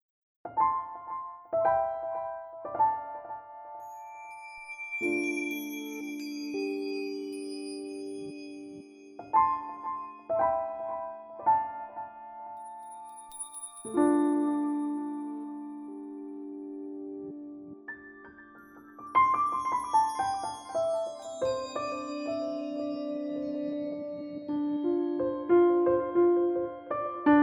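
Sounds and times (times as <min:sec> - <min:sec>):
piano: 0:00.4 - 0:27.4.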